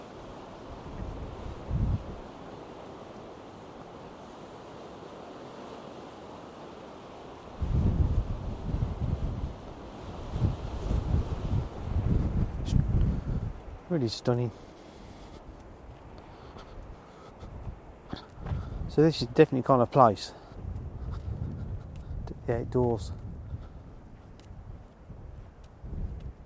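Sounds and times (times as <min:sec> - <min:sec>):
heavy wind buffeting the microphone: 0:00.0 - 0:04.5, 0:07.0 - 0:26.4
sea waves washing in: 0:00.0 - 0:20.5
speech: 0:14.0 - 0:14.7, 0:19.0 - 0:20.4, 0:22.5 - 0:23.2.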